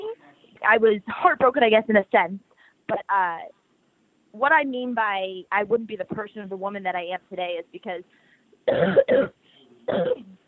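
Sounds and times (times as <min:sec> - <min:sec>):
speech: 0:00.6 - 0:03.6, 0:04.4 - 0:10.4
woman coughing harshly while getting over a cough: 0:08.7 - 0:10.4.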